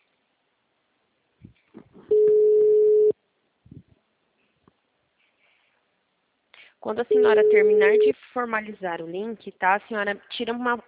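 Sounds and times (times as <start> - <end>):
ringing tone from an outgoing phone call: 2.1 - 3.1, 7.1 - 8.1
speech: 6.8 - 10.8.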